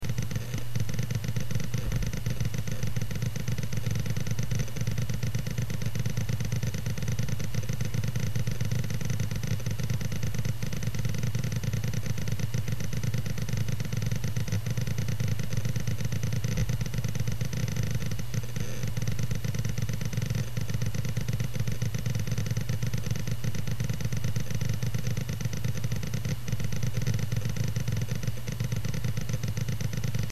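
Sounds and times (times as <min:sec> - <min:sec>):
large hard drive whirring: 0:00.0 - 0:30.3.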